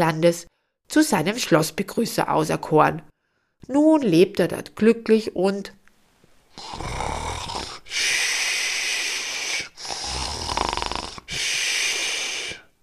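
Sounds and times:
speech: 0.0s - 5.8s, 6.6s - 7.0s
soft snoring from a sleeper: 6.5s - 12.7s
long breathy exhaling of a sleeper: 6.5s - 12.8s.

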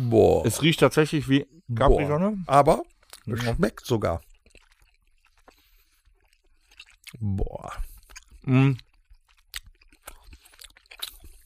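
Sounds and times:
speech: 0.1s - 4.3s, 7.1s - 8.9s
wet smacking and chewing of a sticky sweet: 2.6s - 11.4s.

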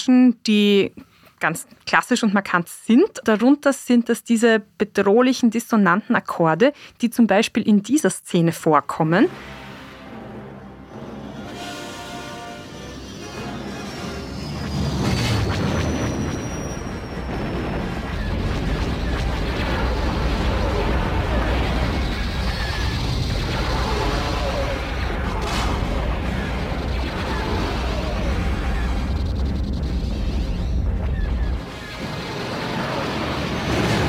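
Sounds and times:
speech: 0.0s - 9.6s
constant heavy rumble and churning noise of a film action scene: 12.7s - 34.0s
loud gunshots in a film action scene: 17.9s - 30.6s, 31.4s - 34.0s.

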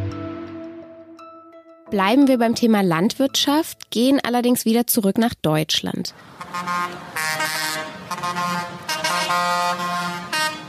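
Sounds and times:
speech: 1.9s - 7.6s
tractor horns honking at farmer protest in Berlin Germany: 6.2s - 10.6s.

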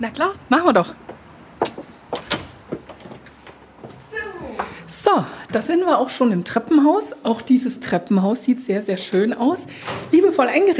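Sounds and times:
speech: 0.0s - 1.1s, 5.1s - 10.7s
dark green villa front door creaking open: 1.8s - 3.2s.

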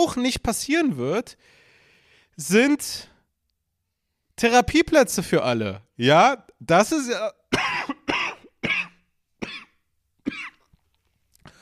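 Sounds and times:
speech: 0.0s - 1.6s, 2.4s - 3.1s, 4.4s - 7.8s
harsh raspy coughing fit: 7.5s - 10.7s.

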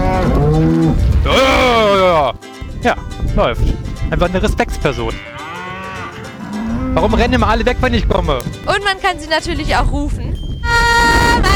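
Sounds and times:
cows mooing while being herded on a farm: 0.0s - 2.2s, 5.1s - 7.5s
speech: 2.8s - 5.4s, 6.9s - 11.5s.

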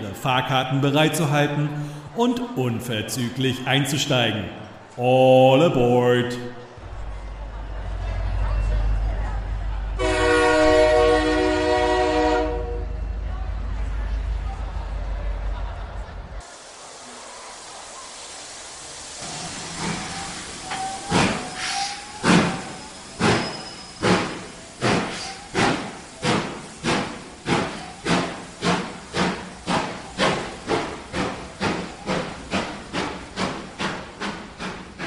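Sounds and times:
steam train rumble: 0.0s - 35.0s
speech: 0.2s - 6.6s
steam engine chuffing: 7.4s - 35.0s
steam train whistle blast: 10.0s - 13.0s, 19.2s - 22.7s.

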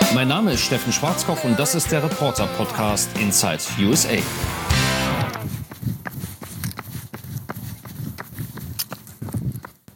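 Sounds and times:
speech: 0.1s - 5.1s
heavy thudding footsteps of a person in Bethesda: 4.2s - 9.9s.

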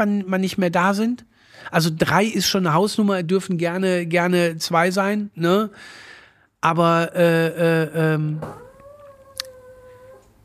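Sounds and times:
speech: 0.0s - 8.6s
small dog howling high-pitched: 8.4s - 10.4s.

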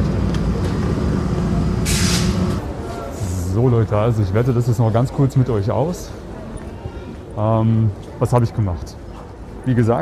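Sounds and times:
subway train rumbling into a station: 0.0s - 5.0s
subway train air brakes hissing: 1.8s - 2.6s
speech: 3.6s - 6.3s, 7.4s - 9.0s, 9.6s - 10.0s.

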